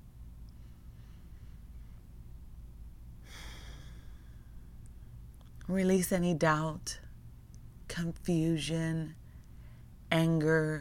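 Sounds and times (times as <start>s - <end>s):
steady low hum: 0.0s - 10.7s
person taking a deep breath during a guided calming prayer: 3.2s - 4.5s
speech: 5.7s - 7.0s, 8.0s - 9.2s, 10.1s - 10.7s.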